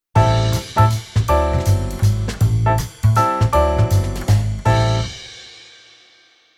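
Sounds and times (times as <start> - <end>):
jazz piano on keyboard: 0.2 - 5.4.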